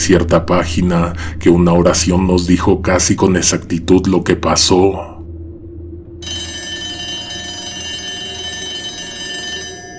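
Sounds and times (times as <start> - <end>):
speech: 0.0 - 5.1
low hum: 0.0 - 9.9
office telephone bell ringing: 6.2 - 9.9.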